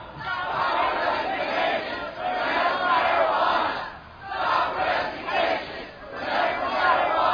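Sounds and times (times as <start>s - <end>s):
crowd chanting a protest slogan in unison: 0.0s - 7.3s.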